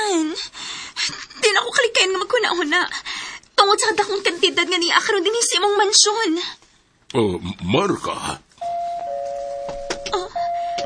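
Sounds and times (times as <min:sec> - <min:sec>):
speech: 0:00.4 - 0:08.4
electronic doorbell ringing: 0:08.6 - 0:10.8.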